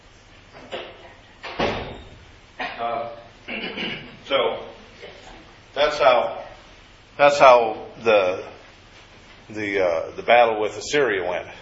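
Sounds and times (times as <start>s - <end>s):
door pushed shut with a solid thud: 0.6s - 2.3s
speech: 7.2s - 8.5s, 9.5s - 11.6s
soft shuffling: 8.6s - 9.6s.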